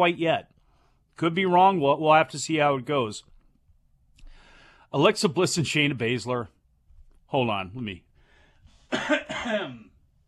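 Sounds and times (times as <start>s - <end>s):
speech: 0.0s - 0.5s, 1.2s - 3.3s, 4.9s - 6.6s, 7.3s - 8.1s, 8.9s - 9.9s
person clearing throat: 8.9s - 10.0s.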